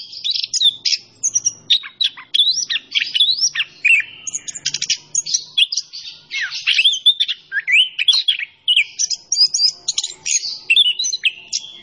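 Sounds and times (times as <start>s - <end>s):
orange-headed thrush singing vigorously: 0.0s - 11.8s.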